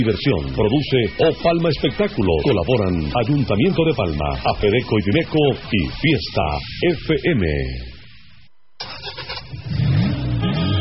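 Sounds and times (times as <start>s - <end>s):
speech: 0.0s - 7.9s
car engine idling and revving: 8.8s - 10.7s.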